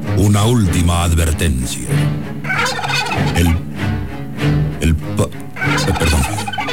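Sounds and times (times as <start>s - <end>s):
speech: 0.2s - 3.6s, 4.9s - 6.5s
turkey gobbling: 2.1s - 4.1s, 4.7s - 6.7s.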